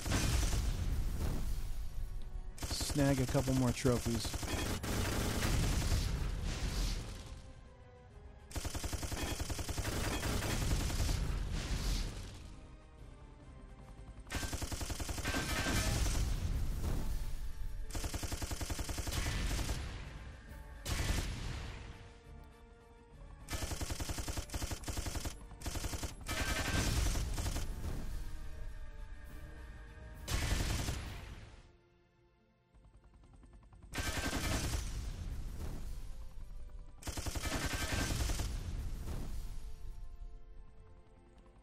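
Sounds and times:
rapid gunfire from a gun in a video game: 0:00.0 - 0:07.4, 0:08.5 - 0:12.5, 0:13.9 - 0:21.8, 0:23.4 - 0:28.7, 0:30.3 - 0:31.6, 0:33.0 - 0:40.0
speech: 0:03.0 - 0:04.6.

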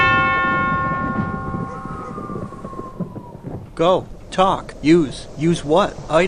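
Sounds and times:
large bell on a statue struck with a silver hammer: 0:00.0 - 0:03.5
low rumbling undertone: 0:00.0 - 0:06.2
speech: 0:03.8 - 0:06.2.

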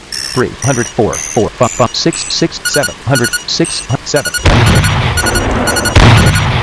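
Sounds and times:
continuous dense rumble in a video game: 0:00.0 - 0:06.6
speech: 0:00.4 - 0:05.0
tank cannon firing standard shells in a video game: 0:04.4 - 0:06.6.

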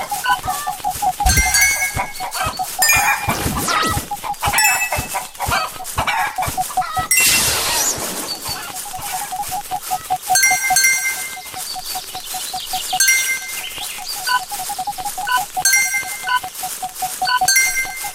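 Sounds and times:
chickens clucking in a busy farmyard: 0:00.0 - 0:18.1
farm animal calls: 0:00.0 - 0:18.1
thuds: 0:01.2 - 0:02.2.

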